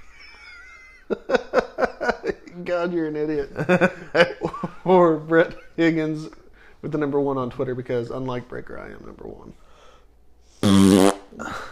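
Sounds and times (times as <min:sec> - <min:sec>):
speech: 0:01.1 - 0:01.6, 0:02.6 - 0:09.6
loud buzzy fart: 0:10.6 - 0:11.4.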